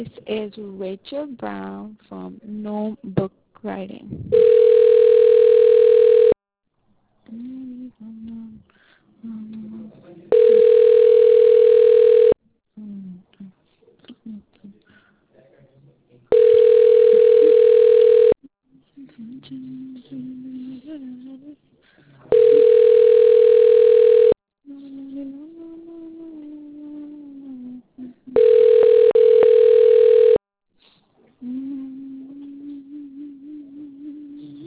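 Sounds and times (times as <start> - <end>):
speech: 0.0 - 5.0, 7.3 - 10.9
telephone ringback tone while an internet phone service connects a call: 4.3 - 6.4, 10.3 - 12.4, 16.3 - 18.4, 22.3 - 24.4, 28.4 - 30.4.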